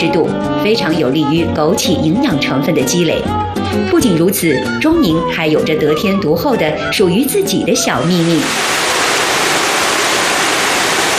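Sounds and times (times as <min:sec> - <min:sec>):
speech: 0:00.0 - 0:08.9
rushing water of a waterfall on a river: 0:08.2 - 0:11.1.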